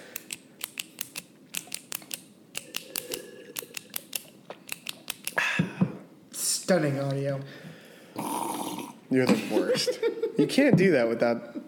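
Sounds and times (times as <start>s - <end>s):
pen clicking: 0.2s - 5.4s
speech: 6.7s - 7.7s, 9.1s - 11.6s
laughter: 9.4s - 10.6s.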